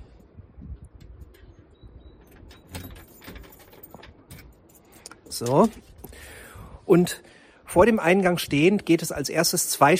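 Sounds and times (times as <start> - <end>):
hotel entrance door opening with metal rattle: 1.2 - 5.8
speech: 5.4 - 9.9.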